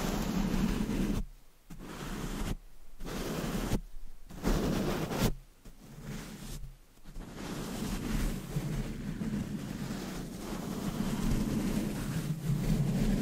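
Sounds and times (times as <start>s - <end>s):
dense brushing and scratching rubbing against a microphone: 0.0s - 13.2s.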